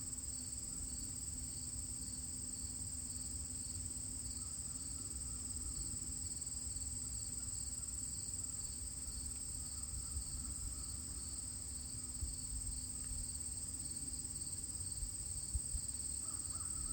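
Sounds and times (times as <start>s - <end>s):
faint steady hum: 0.0s - 16.9s
crickets trilling at the edge of a field: 4.2s - 16.9s.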